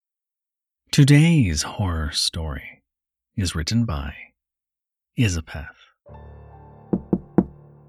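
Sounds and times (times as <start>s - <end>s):
speech: 1.0s - 2.8s, 3.4s - 4.3s, 5.2s - 6.4s
firm knocks on a door: 6.9s - 7.6s.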